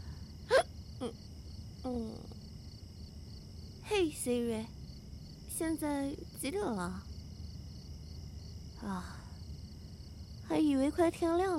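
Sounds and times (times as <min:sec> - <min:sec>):
quiet outdoor noise: 0:00.0 - 0:11.5
person hiccuping: 0:00.5 - 0:01.2
speech: 0:04.0 - 0:04.8, 0:05.6 - 0:07.1, 0:08.8 - 0:09.2, 0:10.5 - 0:11.5.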